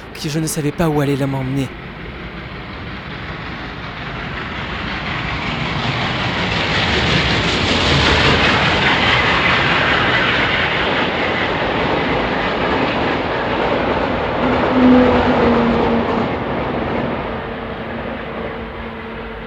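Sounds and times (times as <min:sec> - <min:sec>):
train rumbling along rails: 0:00.0 - 0:19.4
speech: 0:00.2 - 0:01.8.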